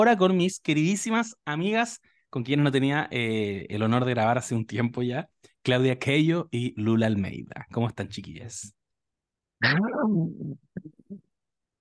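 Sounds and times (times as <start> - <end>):
speech: 0.0 - 8.8, 9.6 - 11.2
person imitating zombie growl: 9.6 - 10.8.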